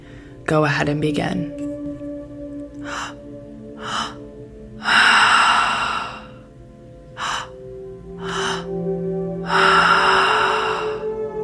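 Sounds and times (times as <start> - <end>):
faint sustained tonal background: 0.0 - 11.4
speech: 0.5 - 1.6
three-part breathing through the mouth into belly and chest: 3.8 - 6.5, 7.2 - 7.6, 8.2 - 8.8, 9.4 - 11.2.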